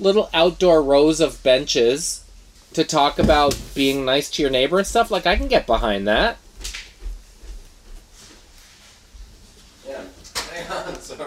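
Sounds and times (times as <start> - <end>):
speech: 0.0 - 6.4
door being moved with soft thumps and rattling scrape: 3.1 - 4.1.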